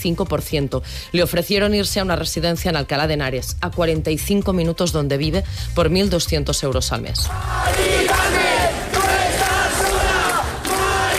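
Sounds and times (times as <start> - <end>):
speech: 0.0 - 8.5
protest crowd chanting in the street at an encampment: 7.3 - 11.1.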